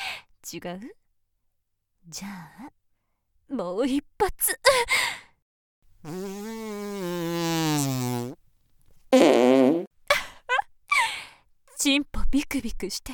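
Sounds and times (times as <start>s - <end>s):
speech: 0.5s - 1.0s, 2.0s - 2.8s, 3.5s - 5.2s, 6.0s - 8.4s, 11.8s - 13.1s
long buzzing fart: 6.0s - 8.4s, 9.1s - 9.9s.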